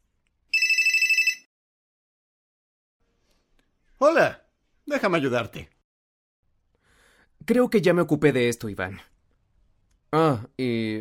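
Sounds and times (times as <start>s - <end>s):
mobile phone ringtone electronic trill: 0.5s - 1.5s
speech: 4.0s - 5.7s, 7.4s - 9.1s, 10.1s - 10.9s.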